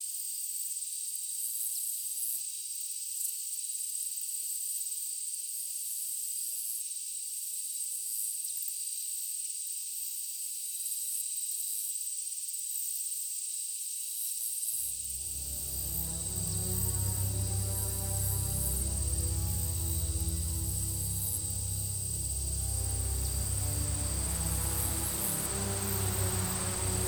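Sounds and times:
grassland ambience in daytime: 15.1s - 27.0s.

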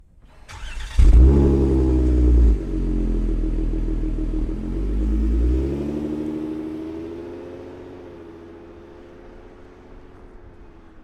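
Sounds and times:
Chrysler TC starting up outside: 0.2s - 6.6s
Chrysler TC driving away, approaching and stopping: 0.3s - 11.0s.

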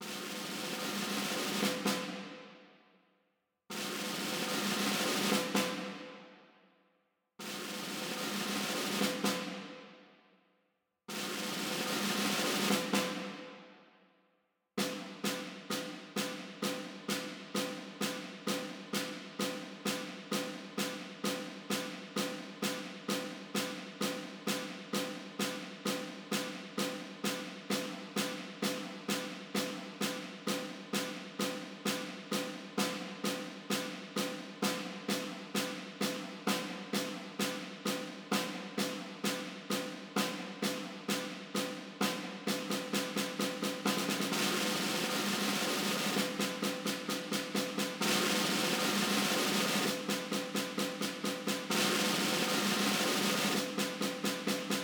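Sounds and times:
orchestra snare drum: 0.0s - 2.7s, 3.7s - 6.4s, 7.4s - 10.0s, 11.1s - 13.8s, 14.8s - 54.8s.

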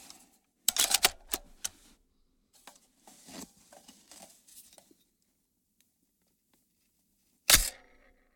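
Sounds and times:
AR 15 M4 rifle charging handle with magazine: 0.7s - 1.7s, 7.5s - 8.0s.

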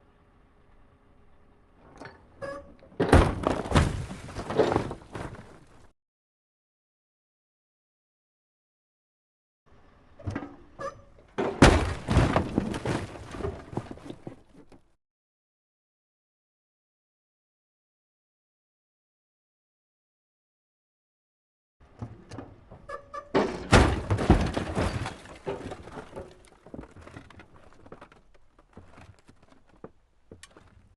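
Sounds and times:
car chassis dropped on ground in exterior crash: 3.0s - 5.8s, 11.4s - 14.8s, 23.3s - 30.8s
metal crash and bounce: 11.4s - 13.9s, 23.3s - 26.5s.

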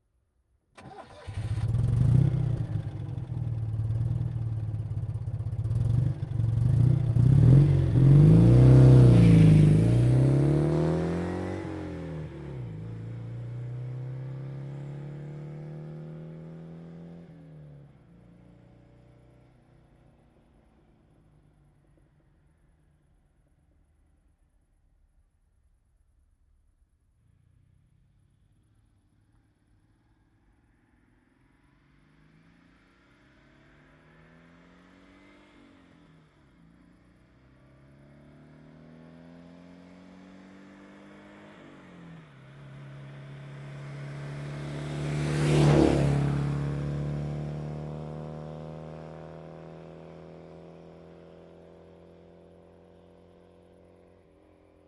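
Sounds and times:
modified Citroen 2CV starting, departing, passing and arriving by a roadside: 0.8s - 17.1s, 42.8s - 48.9s.

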